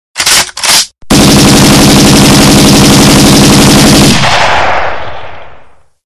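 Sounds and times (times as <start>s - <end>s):
AK 56 rifle gunfire: 1.1s - 5.8s.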